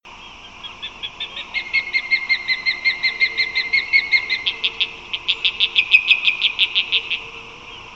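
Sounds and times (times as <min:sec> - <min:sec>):
osprey alarm calls: 0:00.1 - 0:07.9.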